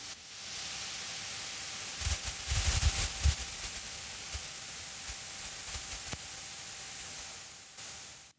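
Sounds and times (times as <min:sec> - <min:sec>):
static hiss recorded by a microphone on Mars: 0:00.0 - 0:08.3
soft low thumps and crackles: 0:02.0 - 0:06.3.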